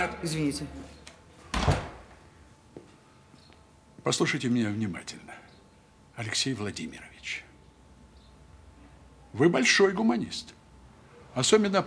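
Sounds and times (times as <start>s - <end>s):
speech: 0.0s - 1.0s, 4.0s - 5.4s, 6.2s - 7.5s, 9.3s - 10.6s, 11.4s - 11.8s
door swinging shut: 1.5s - 2.1s.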